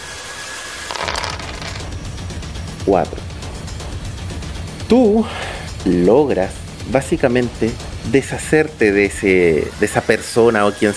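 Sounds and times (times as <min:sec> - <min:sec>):
die clattering across a hard surface: 0:00.9 - 0:01.9
speech: 0:02.8 - 0:03.3, 0:04.9 - 0:10.9.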